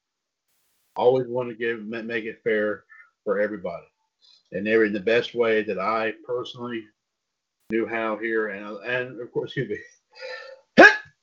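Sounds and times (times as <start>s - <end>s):
speech: 1.0s - 7.0s, 7.7s - 10.4s
single loud sneeze: 10.2s - 11.1s.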